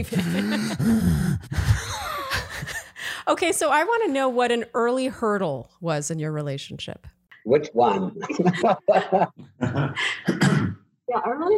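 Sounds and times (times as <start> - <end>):
laughter: 0.0 - 0.9, 7.6 - 10.3
speech: 0.0 - 1.6, 3.2 - 10.5, 11.1 - 11.5
heavy breathing from one person: 0.2 - 3.3, 8.4 - 10.3
strained voiced heaves and gasping groans: 0.4 - 1.9.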